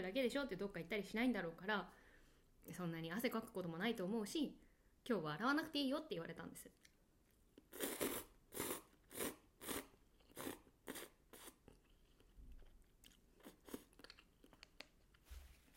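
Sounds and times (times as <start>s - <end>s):
speech: 0.0s - 2.0s, 2.6s - 6.9s
crunching and chewing while eating cup noodles: 6.8s - 15.2s.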